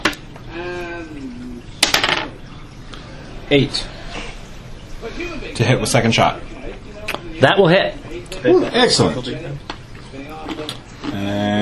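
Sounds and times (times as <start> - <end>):
dice rolled during a tabletop wargame: 1.8 - 2.3
speech: 3.5 - 4.2, 5.1 - 6.5, 7.4 - 9.7.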